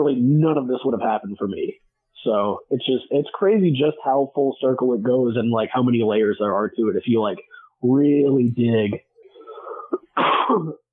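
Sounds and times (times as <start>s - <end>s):
speech: 0.0s - 9.1s, 9.9s - 10.8s
loud harsh cough from someone recovering from a sinus infection: 9.6s - 10.9s
raspy throat clearing from someone recovering from a sinus infection: 9.6s - 10.9s.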